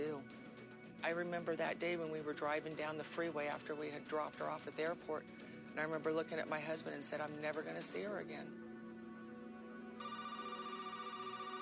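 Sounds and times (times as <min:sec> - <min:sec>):
speech: 0:01.0 - 0:08.7
phone ringing with electronic ringtone: 0:10.0 - 0:11.6.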